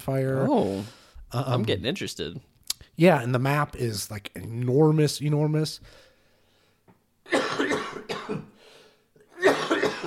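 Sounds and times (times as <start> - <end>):
speech: 0.0 - 6.0
person coughing harshly: 7.3 - 8.6, 9.3 - 10.0.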